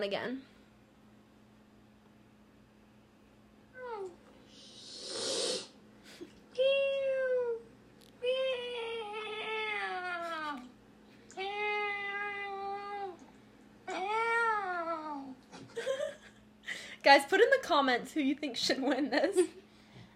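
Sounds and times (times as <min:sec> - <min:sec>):
speech: 0:00.0 - 0:00.5, 0:17.2 - 0:19.6
person imitating a cat meow: 0:03.8 - 0:04.2, 0:06.6 - 0:10.7, 0:11.4 - 0:13.2, 0:13.9 - 0:15.4
breathy hiss: 0:04.5 - 0:06.3.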